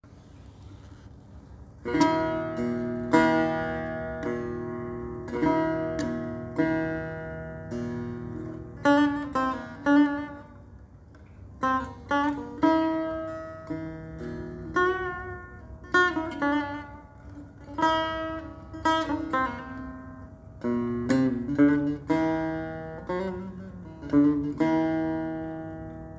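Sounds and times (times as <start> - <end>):
setar playing: 0.5 - 26.1.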